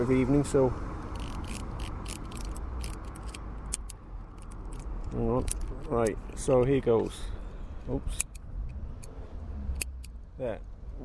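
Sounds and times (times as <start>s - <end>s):
speech: 0.0s - 0.9s, 5.2s - 8.3s, 10.4s - 11.0s
mechanical timer being wound up: 1.1s - 6.6s.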